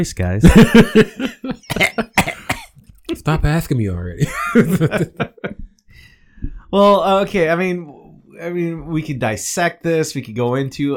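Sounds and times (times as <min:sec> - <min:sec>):
speech: 0:00.0 - 0:02.4, 0:03.2 - 0:06.1, 0:06.7 - 0:10.9
laughter: 0:00.4 - 0:02.2, 0:04.2 - 0:05.6
harsh broadband coughs: 0:01.7 - 0:02.8.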